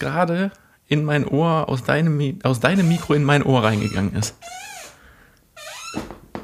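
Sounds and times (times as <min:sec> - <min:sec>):
speech: 0:00.0 - 0:04.6
office chair squeaking: 0:02.7 - 0:05.0, 0:05.6 - 0:06.4.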